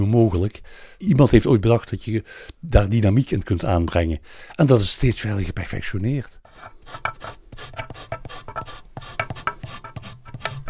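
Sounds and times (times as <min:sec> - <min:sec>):
speech: 0:00.0 - 0:08.2
sanding the worn flattened felt of a piano hammer: 0:06.5 - 0:10.6.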